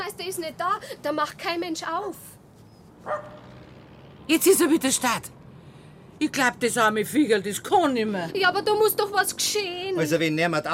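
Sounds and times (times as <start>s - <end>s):
speech: 0.2s - 2.4s, 3.0s - 3.4s, 4.3s - 5.4s, 6.2s - 10.7s
small dog barking high-pitched: 3.0s - 3.4s.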